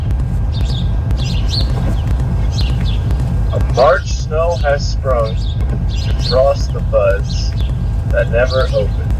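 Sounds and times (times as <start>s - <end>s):
low rumble: 0.0s - 9.1s
young bird chirping: 0.5s - 3.8s, 4.6s - 9.1s
speech: 3.8s - 7.5s, 8.1s - 9.0s.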